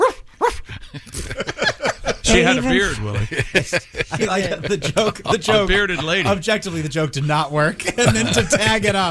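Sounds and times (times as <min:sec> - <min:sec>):
dog barking: 0:00.0 - 0:00.6
laughter: 0:00.7 - 0:09.1
speech: 0:02.3 - 0:09.1.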